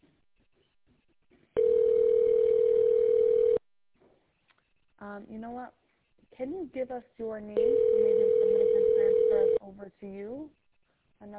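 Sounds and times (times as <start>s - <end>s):
electronic telephone ring tone over the line: 1.6s - 3.6s, 7.6s - 9.6s
speech: 5.2s - 5.8s, 6.4s - 10.6s.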